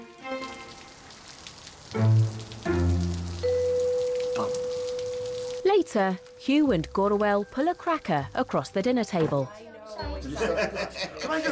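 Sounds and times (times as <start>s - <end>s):
heavy rain pouring down: 0.0s - 8.1s
speech: 5.8s - 11.4s
laughter: 10.2s - 11.4s.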